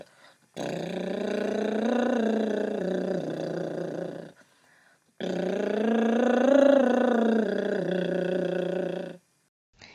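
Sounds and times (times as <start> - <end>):
breath: 0.0 - 0.4, 4.4 - 5.1
lip trill humming a simple melody as a voice exercise: 0.0 - 4.4, 5.2 - 9.2.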